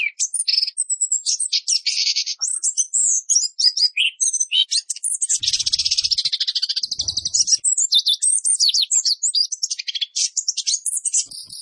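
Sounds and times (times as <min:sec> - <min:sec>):
orange-headed thrush singing whistles and rolling trills: 0:00.0 - 0:11.6
soft low knocks: 0:06.9 - 0:07.6.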